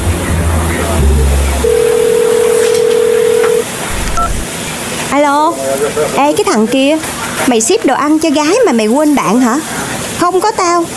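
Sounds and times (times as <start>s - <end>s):
low noise: 0.0s - 9.6s
phone call ringback tone while a call is placed: 1.6s - 4.5s
speech: 5.2s - 10.9s.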